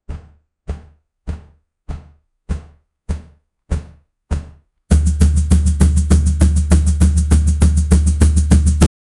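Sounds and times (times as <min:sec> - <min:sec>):
samba music: 0:04.4 - 0:08.9.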